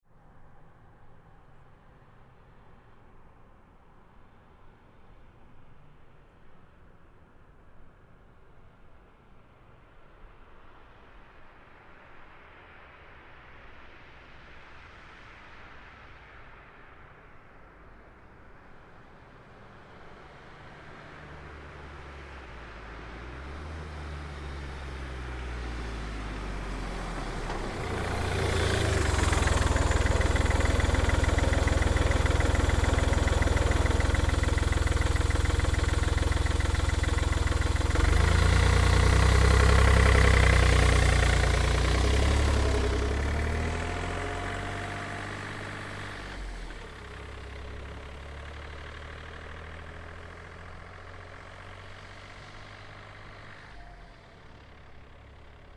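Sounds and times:
2005 Smartcar Fortwo driving up slowly, stopping and driving away: 19.0 - 55.7.

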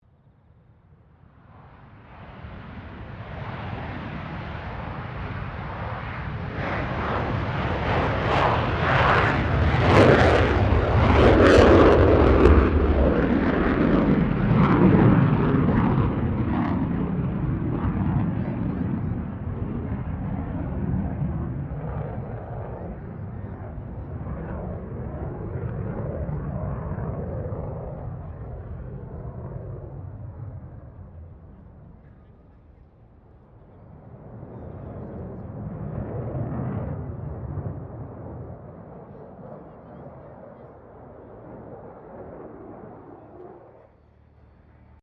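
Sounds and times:
F16 Falcon jet fighter taking off: 1.5 - 32.0, 33.5 - 43.9.

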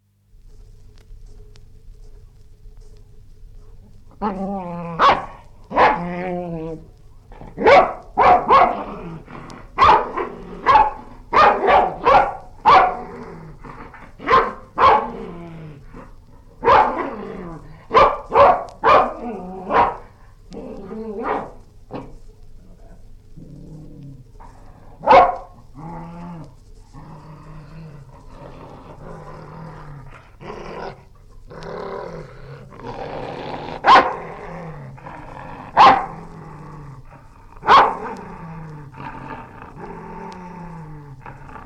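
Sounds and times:
dog growling: 3.8 - 41.6
dog barking angrily: 5.0 - 6.3, 7.4 - 13.2, 13.8 - 15.3, 16.2 - 20.2, 20.8 - 22.1, 25.0 - 25.6, 33.7 - 34.5, 35.6 - 36.4, 37.6 - 38.2.

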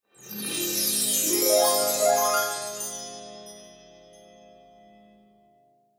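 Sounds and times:
cymbal harp wind chimes swell: 0.1 - 4.7.

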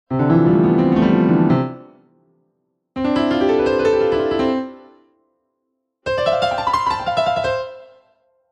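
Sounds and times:
very fast piano scales across three octaves: 0.1 - 2.0, 3.0 - 5.0, 6.0 - 8.1.

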